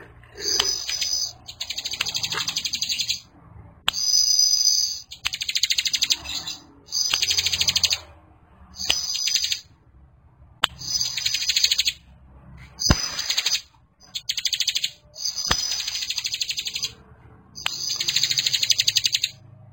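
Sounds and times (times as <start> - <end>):
Bar-winged prinia delivering buzzy high trills: 0.3 - 3.3, 3.9 - 8.1, 8.7 - 9.7, 10.7 - 12.1, 12.8 - 17.0, 17.6 - 19.4
sharp clicks: 0.4 - 3.2, 3.8 - 8.1, 8.8 - 9.7, 10.6 - 12.0, 12.8 - 17.0.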